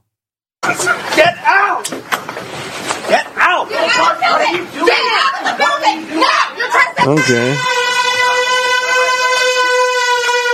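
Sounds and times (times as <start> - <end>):
speech: 0.7 - 7.8
air horn blast with brassy buzzing tone: 7.0 - 10.5.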